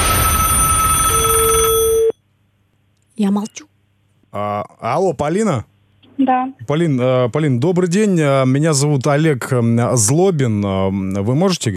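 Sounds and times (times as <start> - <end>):
telephone bell ringing for a morning call: 0.0 - 2.2
speech: 3.2 - 3.7, 4.3 - 11.7.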